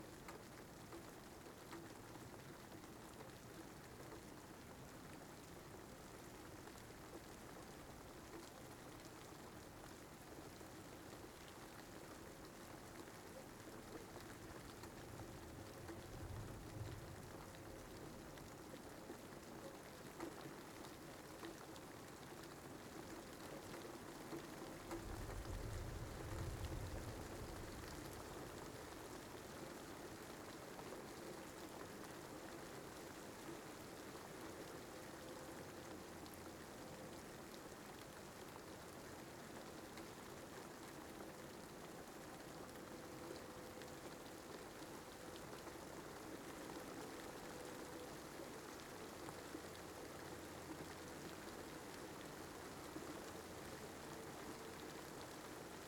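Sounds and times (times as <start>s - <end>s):
rain heard inside a car: 0.0s - 55.8s.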